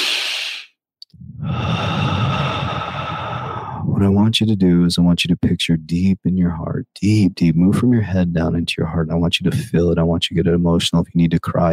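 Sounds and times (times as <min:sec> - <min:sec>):
slow deep breath during a guided relaxation exercise: 0:00.0 - 0:03.9
speech: 0:04.0 - 0:11.7.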